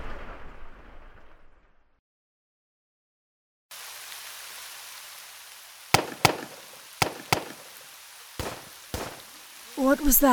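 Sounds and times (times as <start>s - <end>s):
steady hiss: 3.7s - 10.3s
pistol shots from the road below the barracks at Camp Holmes: 5.9s - 7.8s, 8.4s - 9.7s
speech: 9.8s - 10.3s.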